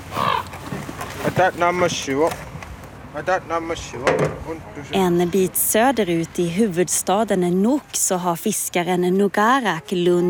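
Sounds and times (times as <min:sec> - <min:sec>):
ravens croaking on house rooftops: 0:00.0 - 0:01.2
speech: 0:01.2 - 0:02.5, 0:03.1 - 0:10.2.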